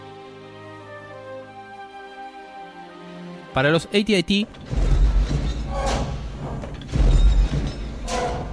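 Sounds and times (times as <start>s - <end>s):
speech: 3.6s - 4.9s
metallic clank and rattle of bicycle chains: 4.5s - 8.5s
mechanical walker stomp sound effect from a press and bicycle chains struck against pavement: 4.6s - 8.5s.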